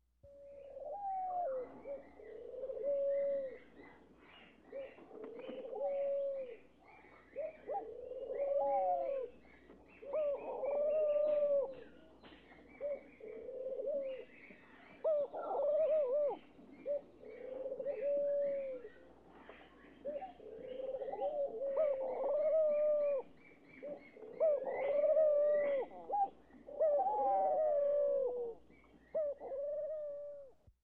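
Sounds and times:
owl hooting: 0.3 - 3.8, 4.7 - 6.7, 7.3 - 9.4, 10.0 - 11.8, 15.0 - 18.9, 20.0 - 30.5.

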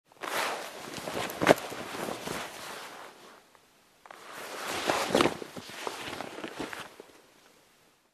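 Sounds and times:
jackets rustling while being sorted: 0.1 - 3.5, 4.1 - 7.0.

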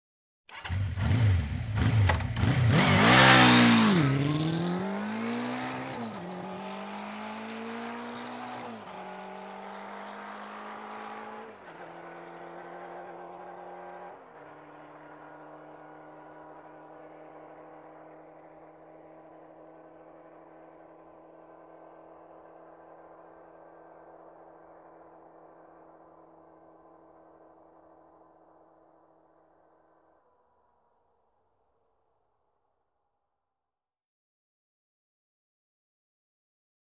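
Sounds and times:
motorcycle driving away fast: 0.5 - 28.9.

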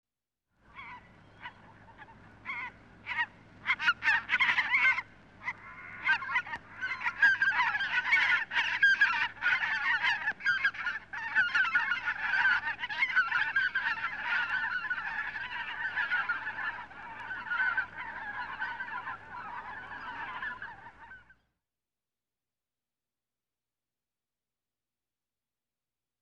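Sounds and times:
ducklings clucking: 0.8 - 21.2.

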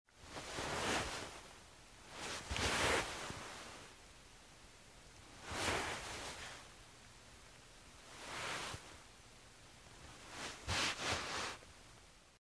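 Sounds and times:
rubbing on soft cloth: 0.3 - 1.4, 2.1 - 3.9, 5.4 - 6.6, 8.1 - 8.9, 10.2 - 11.7.

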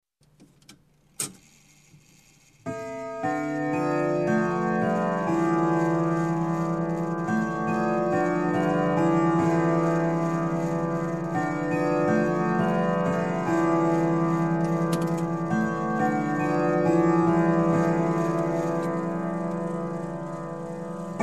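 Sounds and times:
grandfather clock striking: 2.8 - 21.2.

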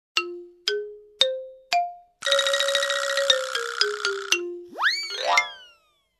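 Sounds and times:
comedy glockenspiel with spin: 2.2 - 6.1.

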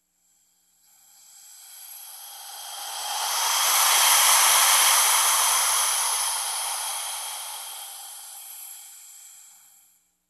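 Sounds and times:
oxygen tank hissing: 1.3 - 9.5.

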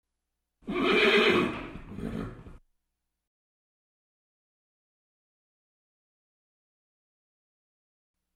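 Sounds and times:
horse neighing in the stables: 0.6 - 2.6.

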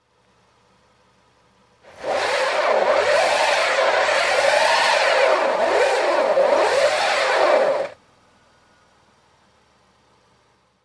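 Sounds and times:
truck winch cable pulled out: 1.9 - 8.0.

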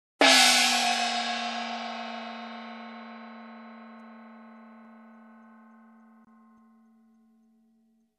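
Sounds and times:
cymbal crash: 0.2 - 4.9.

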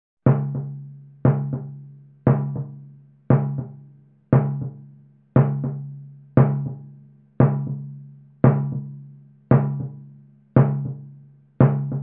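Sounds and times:
dampened timpani groove: 0.3 - 3.8, 4.4 - 4.8, 5.4 - 6.8, 7.4 - 8.9, 9.5 - 10.0, 10.6 - 11.0.

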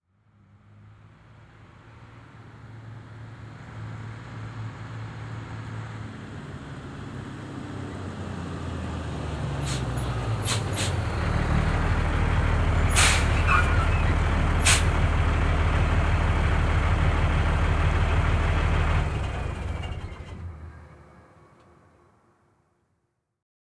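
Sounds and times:
garbage truck approaching: 2.2 - 22.2.

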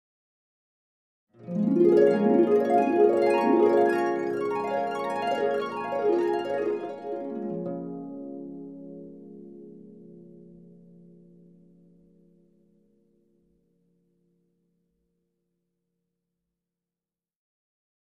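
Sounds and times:
harp glissando up and down: 1.4 - 8.7.

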